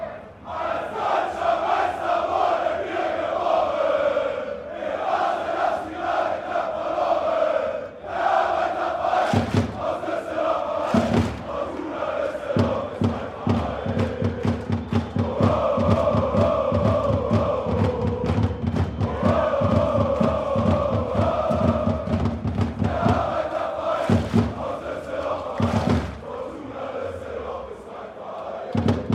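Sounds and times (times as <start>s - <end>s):
football ultras chanting in stadium: 0.0s - 29.1s
sharp claps or drum hits: 9.3s - 9.8s, 10.9s - 11.9s, 12.6s - 23.4s, 24.0s - 26.3s, 28.8s - 29.1s.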